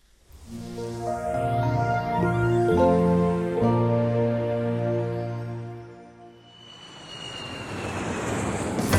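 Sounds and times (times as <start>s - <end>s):
airplane engine droning: 0.4s - 8.9s
aircraft powering up roar: 0.8s - 8.9s.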